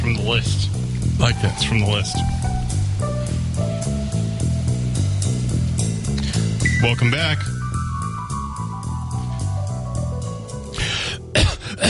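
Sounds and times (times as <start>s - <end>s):
steady tonal music: 0.0s - 11.8s
speech: 0.1s - 2.5s, 6.8s - 7.6s
person faking a cough: 10.8s - 11.8s.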